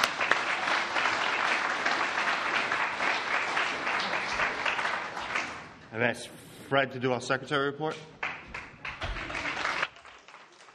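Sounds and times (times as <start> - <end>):
audience applause: 0.0 - 5.8, 8.2 - 10.7
speech: 6.0 - 8.2.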